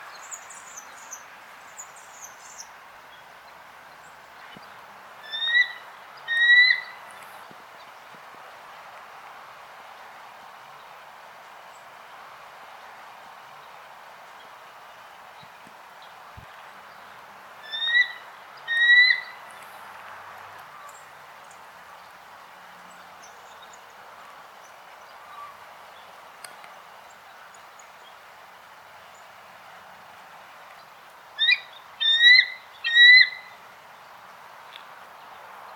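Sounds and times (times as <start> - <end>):
Haliaeetus leucocephalus bald eagle calling: 5.2 - 7.0, 17.6 - 19.4, 31.4 - 33.6.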